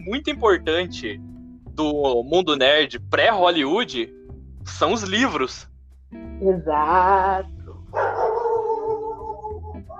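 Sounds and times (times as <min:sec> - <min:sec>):
speech: 0:00.0 - 0:08.1
dog barking in a whining howling tone: 0:07.9 - 0:09.9.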